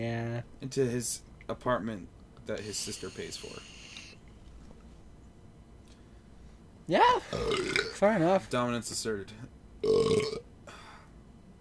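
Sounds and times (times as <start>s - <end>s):
speech: 0.0s - 3.8s, 6.9s - 10.5s
loud drawn-out burp with a low buzzy tone: 7.3s - 8.0s, 9.8s - 10.4s.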